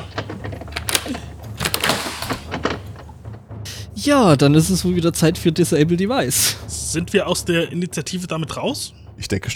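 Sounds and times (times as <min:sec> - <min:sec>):
door being shut and locked: 0:00.0 - 0:03.4
speech: 0:04.0 - 0:09.5.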